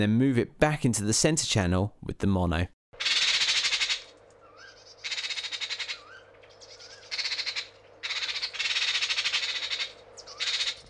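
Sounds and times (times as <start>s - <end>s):
speech: 0.0s - 2.8s
magpie squawking: 3.0s - 10.8s.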